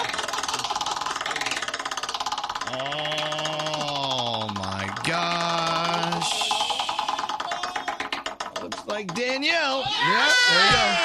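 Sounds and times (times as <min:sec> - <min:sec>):
prize wheel spinning with rapid even ticking: 0:00.0 - 0:11.0
speech: 0:02.7 - 0:03.1, 0:09.0 - 0:11.0.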